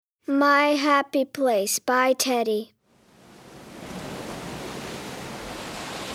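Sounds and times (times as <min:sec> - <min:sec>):
speech: 0:00.2 - 0:02.8
sea waves rolling in: 0:02.8 - 0:06.1.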